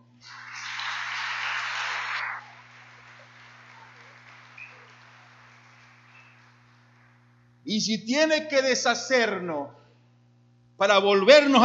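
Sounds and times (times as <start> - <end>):
crowd applauding: 0.0 - 7.5
room hum with faint hiss: 0.0 - 11.6
speech: 7.6 - 9.8, 10.8 - 11.6.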